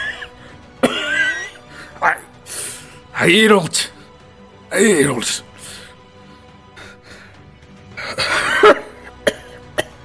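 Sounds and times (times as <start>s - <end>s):
person performing a harsh ragged coughing fit as a character coughing up blood: 0.0s - 1.6s, 8.0s - 10.0s
speech: 3.2s - 4.0s, 4.8s - 5.5s.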